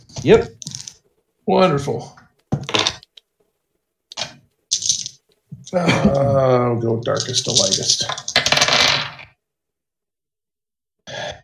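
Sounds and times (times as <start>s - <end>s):
speech: 0.2s - 0.6s, 1.5s - 2.2s, 5.7s - 8.3s
handful of dice rattling across a hard surface: 0.6s - 1.0s, 4.7s - 5.2s, 7.1s - 9.3s.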